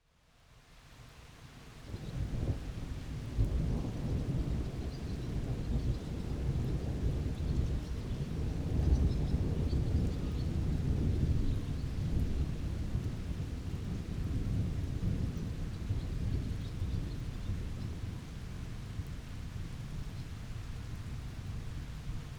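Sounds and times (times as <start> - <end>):
thunderstorm: 1.9 - 22.0.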